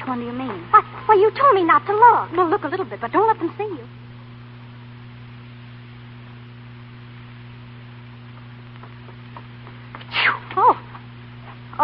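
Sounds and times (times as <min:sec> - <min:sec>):
steady low hum: 0:00.0 - 0:11.8
speech: 0:00.1 - 0:04.0
person sneezing: 0:10.1 - 0:10.8.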